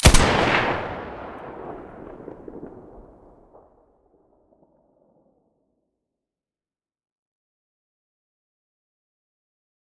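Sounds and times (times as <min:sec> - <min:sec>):
Sa 58 rifle muzzle gunshots: 0:00.0 - 0:03.3.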